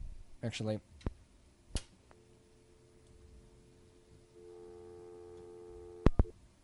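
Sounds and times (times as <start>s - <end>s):
speech: 0.5s - 1.1s
telephone busy signal tone: 2.1s - 6.3s.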